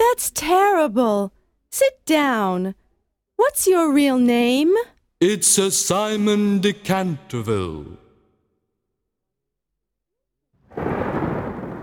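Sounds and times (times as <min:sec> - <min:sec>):
speech: 0:00.2 - 0:02.8, 0:03.4 - 0:08.0
deep roll of thunder rumbling: 0:10.6 - 0:11.8
rain: 0:10.6 - 0:11.8.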